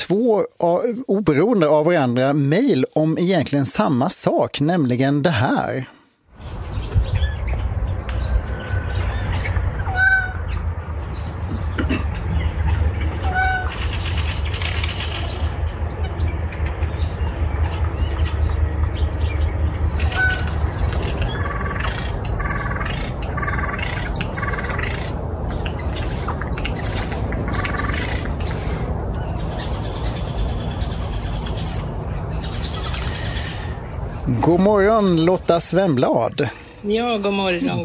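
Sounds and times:
speech: 0:00.1 - 0:07.2, 0:34.7 - 0:37.8
steady continuous low rumble: 0:06.3 - 0:35.9
bird calls and chirps: 0:06.4 - 0:35.5.

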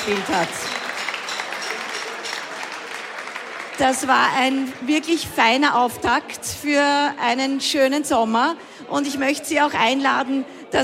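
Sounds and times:
speech: 0:00.0 - 0:00.8, 0:03.8 - 0:10.8
audience applauding at an outdoor summer festival after an accordion performance: 0:00.0 - 0:05.2.

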